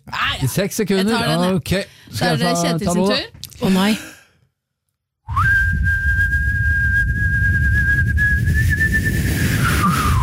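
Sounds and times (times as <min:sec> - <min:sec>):
speech: 0:00.4 - 0:04.1
man whistling one long steady note: 0:05.3 - 0:10.2.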